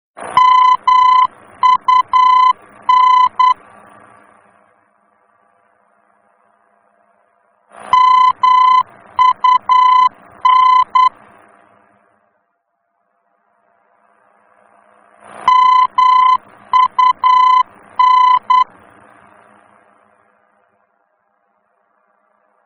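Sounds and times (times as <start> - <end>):
VOR aerobeacon signal in Germany: 0.2 - 3.6, 7.8 - 11.2, 15.4 - 18.8.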